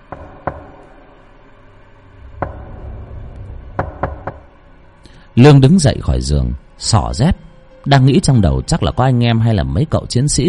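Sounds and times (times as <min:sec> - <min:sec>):
knocking on a door at night: 0:00.1 - 0:00.8, 0:02.4 - 0:02.9, 0:03.7 - 0:04.5
speech: 0:05.4 - 0:10.4.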